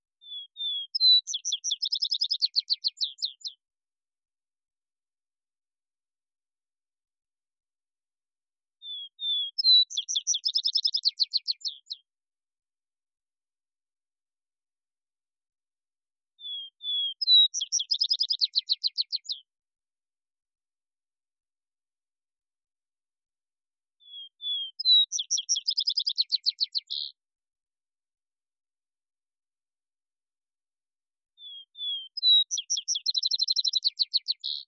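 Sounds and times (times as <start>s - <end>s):
Vesper Sparrow: 0.0s - 3.7s, 8.7s - 12.2s, 16.3s - 19.7s, 23.9s - 27.3s, 31.3s - 34.6s.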